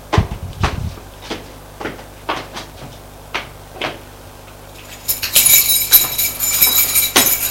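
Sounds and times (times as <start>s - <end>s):
man's footsteps climbing stairs in an old apartment building: 0.0s - 7.4s
bright metallic rattle and clatter: 4.8s - 7.4s.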